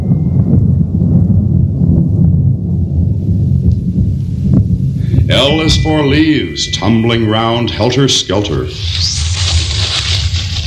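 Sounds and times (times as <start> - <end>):
thunder rumbling: 0.0 - 9.2
speech: 5.4 - 9.6.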